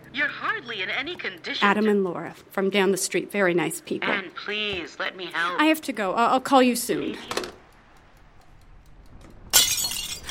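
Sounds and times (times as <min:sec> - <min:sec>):
speech: 0:00.2 - 0:07.4
ceramic plate slipping and breaking: 0:09.6 - 0:10.2.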